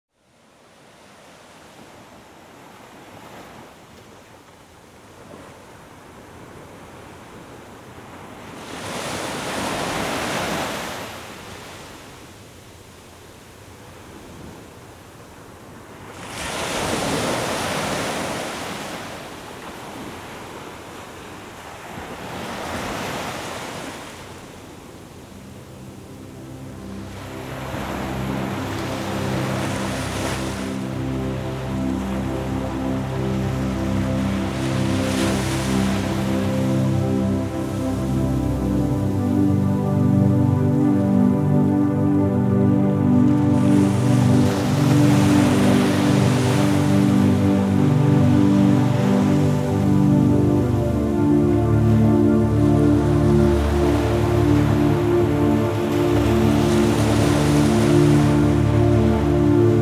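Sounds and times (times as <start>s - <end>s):
ocean waves: 6.4s - 12.4s, 15.7s - 59.8s
sleep music: 25.1s - 59.8s.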